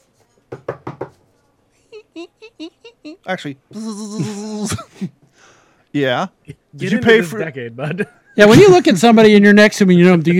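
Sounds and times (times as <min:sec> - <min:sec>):
sharp knocks on a car window: 0:00.5 - 0:01.1
speech: 0:02.2 - 0:10.3.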